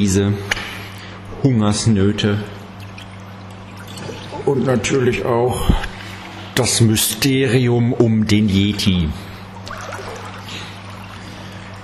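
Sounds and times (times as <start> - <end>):
speech: 0.0 - 0.7, 1.4 - 2.6, 4.4 - 5.9, 6.6 - 9.3
pool noodle splashing and sloshing water in a pool: 2.6 - 5.0, 9.6 - 11.8.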